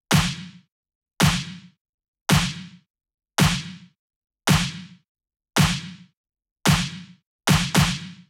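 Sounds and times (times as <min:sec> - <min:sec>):
nu disco drum kit clap: 0:00.1 - 0:02.8, 0:03.4 - 0:05.0, 0:05.6 - 0:06.1, 0:06.7 - 0:08.2.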